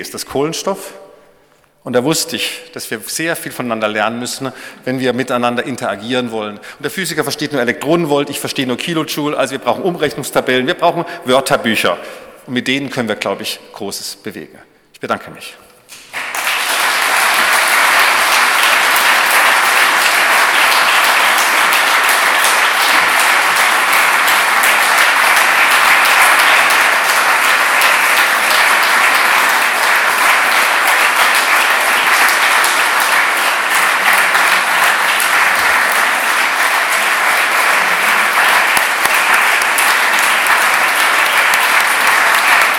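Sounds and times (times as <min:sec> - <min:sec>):
speech: 0:00.0 - 0:01.1, 0:01.8 - 0:15.7
dense applause from a large audience after a lecture: 0:16.0 - 0:42.7.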